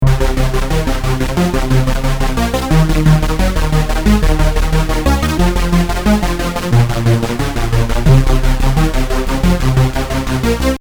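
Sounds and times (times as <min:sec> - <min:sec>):
hoover rave synth on Prophet '08: 0:00.0 - 0:10.7.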